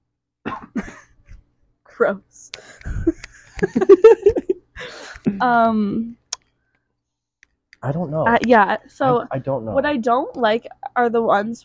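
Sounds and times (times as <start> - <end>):
person coughing: 0.5 - 1.1
speech: 2.0 - 6.2, 7.8 - 11.6
laughter: 2.9 - 5.2.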